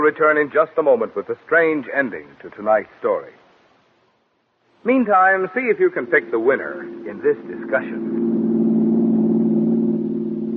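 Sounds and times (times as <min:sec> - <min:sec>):
speech: 0:00.0 - 0:03.4, 0:04.8 - 0:08.2
car motor running smoothly in an old buggy: 0:06.2 - 0:10.5.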